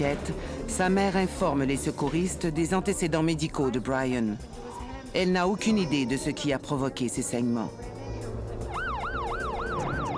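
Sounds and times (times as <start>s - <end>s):
speech: 0.0s - 7.9s
ambulance siren yelping: 8.7s - 10.1s.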